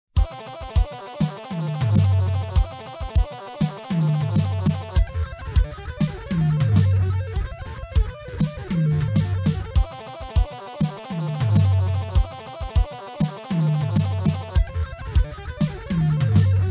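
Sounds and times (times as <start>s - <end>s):
guitar playing 32nd notes in 4/4 time at 100 bpm: 0.2s - 16.7s.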